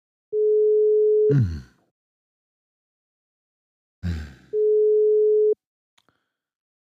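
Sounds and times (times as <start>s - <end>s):
telephone ringback tone on an unanswered call: 0.4s - 1.3s, 4.6s - 5.6s
speech: 1.3s - 1.6s.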